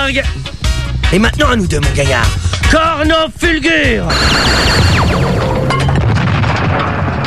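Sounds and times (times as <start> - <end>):
speech: 0.1 - 5.2
cartoon falling whistle tones: 4.1 - 5.8
loud cartoon-style explosion with roaring blast: 4.1 - 7.1.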